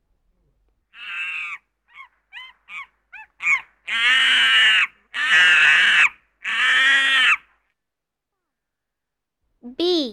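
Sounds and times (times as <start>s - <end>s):
monkey screeching: 1.0s - 7.5s.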